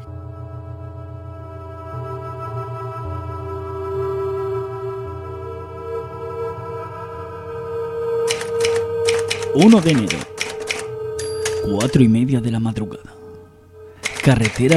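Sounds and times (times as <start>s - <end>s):
steady low musical drone: 0.0s - 14.7s
sharp typewriter key strikes clacking: 8.3s - 12.0s, 14.0s - 14.7s
speech: 9.6s - 10.3s, 11.7s - 13.2s, 14.2s - 14.7s.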